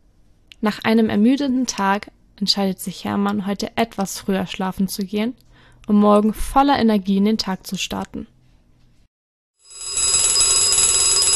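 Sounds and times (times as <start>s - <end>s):
speech: 0.6s - 8.3s
alarm clock ringing with a metallic bell clatter: 9.6s - 11.3s.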